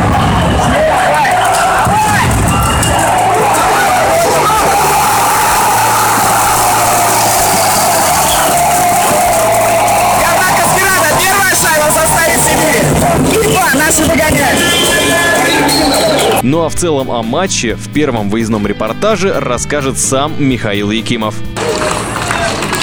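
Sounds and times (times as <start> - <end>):
hockey arena crowd roaring and cheering after a goal: 0.0 - 16.4, 21.6 - 22.8
speech: 16.4 - 21.6.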